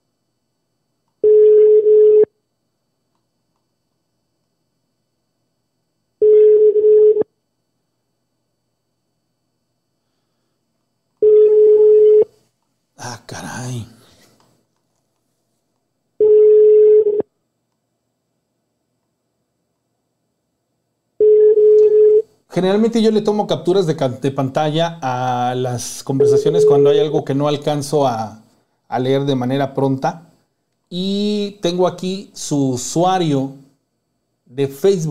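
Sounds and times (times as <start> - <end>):
telephone ringback tone while calling someone: 1.2 - 2.3, 6.2 - 7.3, 11.2 - 12.3, 16.2 - 17.2, 21.2 - 22.2
speech: 13.3 - 14.0, 22.6 - 30.3, 30.9 - 33.6, 34.5 - 35.0.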